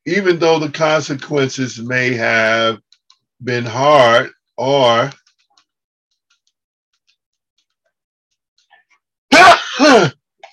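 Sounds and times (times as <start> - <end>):
speech: 0.0 - 2.8, 3.4 - 5.2, 9.8 - 10.2
loud sneeze: 9.3 - 10.2.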